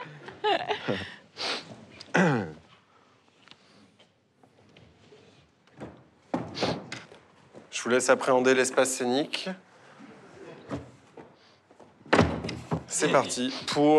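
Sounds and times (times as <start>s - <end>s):
speech: 0.5s - 1.2s, 7.9s - 9.7s, 13.1s - 13.9s
wooden door being brought onto a theatre stage and shifted about: 12.1s - 13.0s.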